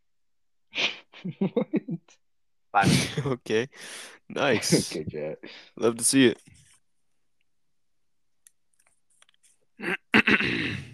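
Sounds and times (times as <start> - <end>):
speech: 1.2 - 6.6, 9.8 - 10.9
person coughing: 9.8 - 10.9.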